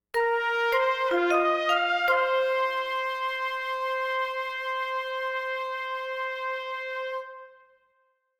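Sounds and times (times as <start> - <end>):
oboe in a short stinger: 0.2 - 7.7
flute in a short stinger: 0.2 - 7.8
trumpet in a short stinger: 0.2 - 8.0.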